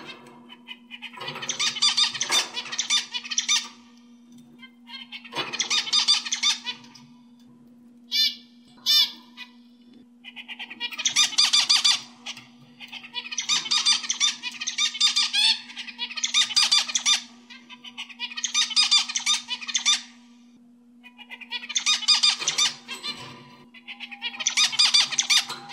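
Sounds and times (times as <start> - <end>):
Oriental magpie-robin singing chattering and whistled phrases: 0.6 - 3.8, 4.8 - 6.9, 10.2 - 20.1, 21.0 - 23.1, 23.8 - 25.5.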